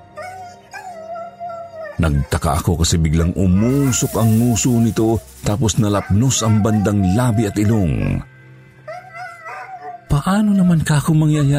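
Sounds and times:
dog yelping in pain: 0.1 - 2.4, 5.9 - 7.9, 8.9 - 10.1
speech: 2.0 - 8.3, 10.2 - 11.5.

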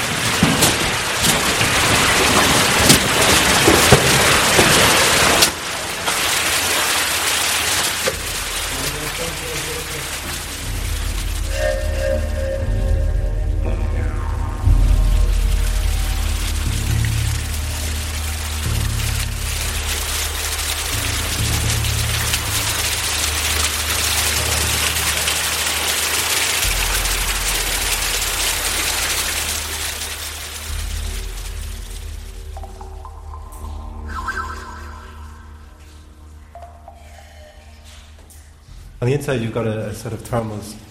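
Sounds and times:
feeder stream rushing and splashing through an underground cave streamway: 0.0 - 13.5, 14.5 - 35.4
deep rumbling undertone of water: 8.2 - 39.6
speech: 39.3 - 40.8.

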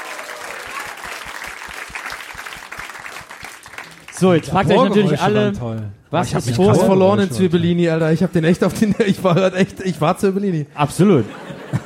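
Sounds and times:
audience applauding: 0.0 - 5.3
speech: 4.2 - 11.5
laughter: 8.5 - 11.8.

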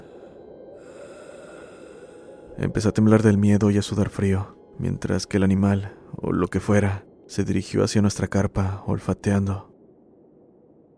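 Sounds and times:
heavy labored breathing: 0.0 - 2.6
speech: 2.6 - 9.7.

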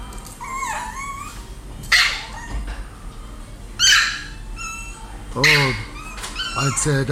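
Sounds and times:
small dog whining: 0.4 - 2.7, 3.8 - 7.0
speech: 5.4 - 5.9, 6.6 - 7.1.

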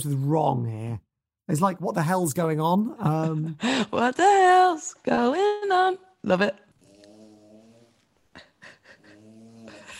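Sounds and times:
speech: 0.0 - 6.6
dog snoring: 6.8 - 8.0, 9.0 - 9.9.

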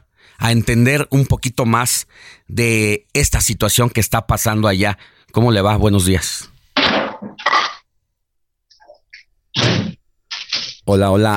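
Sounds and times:
speech: 0.3 - 7.0, 10.9 - 11.3
telephone dropping and clattering with heavy thuds: 6.8 - 7.5.

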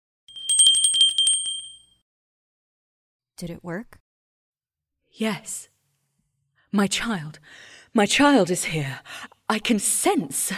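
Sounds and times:
small hand bell ringing: 0.3 - 2.0
speech: 3.4 - 4.0, 5.1 - 5.7, 6.7 - 10.5.

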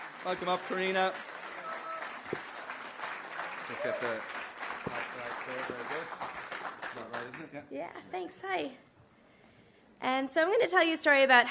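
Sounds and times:
audience applause: 0.0 - 7.6
speech: 0.2 - 1.3, 3.7 - 8.9, 10.0 - 11.4.

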